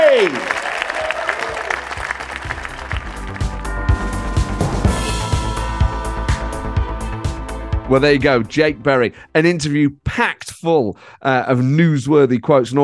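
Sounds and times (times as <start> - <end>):
theatre audience applauding: 0.0 - 4.9
speech: 0.2 - 0.6, 7.9 - 12.8
music with sustained tones: 1.6 - 9.4.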